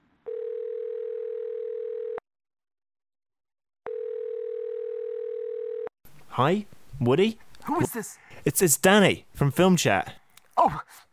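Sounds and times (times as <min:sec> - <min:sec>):
telephone tone while a call is placed: 0:00.2 - 0:02.2, 0:03.9 - 0:05.9
speech: 0:06.4 - 0:11.1.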